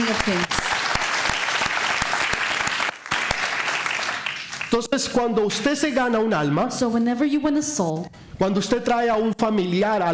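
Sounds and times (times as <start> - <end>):
audience applauding: 0.0 - 4.8
speech: 0.2 - 0.6, 4.7 - 10.1.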